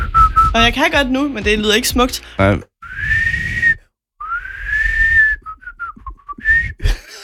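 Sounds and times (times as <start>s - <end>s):
person whistling an out-of-tune wavering tune: 0.0s - 0.6s, 2.8s - 7.0s
speech: 0.5s - 2.7s.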